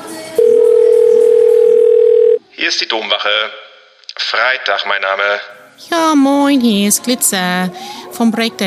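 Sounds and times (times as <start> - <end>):
noise: 0.0 - 8.6
telephone dial tone: 0.4 - 2.4
speech: 2.6 - 3.6, 4.2 - 8.6.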